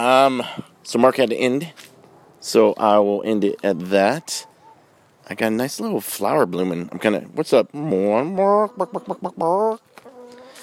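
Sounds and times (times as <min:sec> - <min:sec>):
speech: 0:00.0 - 0:04.5, 0:05.3 - 0:09.9
chicken clucking: 0:03.8 - 0:04.9, 0:07.9 - 0:10.6
chicken squawking: 0:04.0 - 0:05.0, 0:08.3 - 0:10.6.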